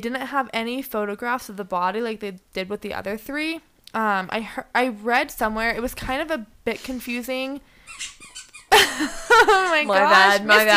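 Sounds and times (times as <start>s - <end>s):
speech: 0.0s - 8.2s, 8.8s - 10.7s
dog chewing a squeaky toy: 7.8s - 8.8s
laughter: 8.7s - 10.7s.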